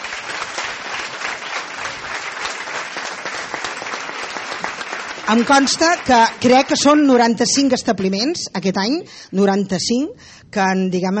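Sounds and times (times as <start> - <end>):
audience applause: 0.0 - 7.0
speech: 5.3 - 11.1.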